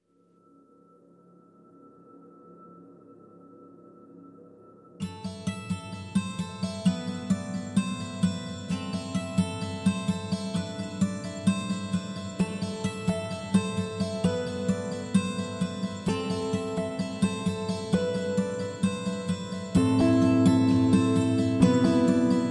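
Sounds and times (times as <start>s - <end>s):
guitars playing: 5.0s - 22.4s.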